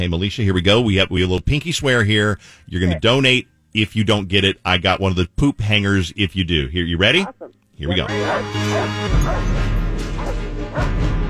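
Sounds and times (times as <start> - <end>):
speech: 0.0 - 11.1
loud dramatic orchestral music: 8.0 - 11.2
dog barking: 8.1 - 9.5, 10.2 - 10.9.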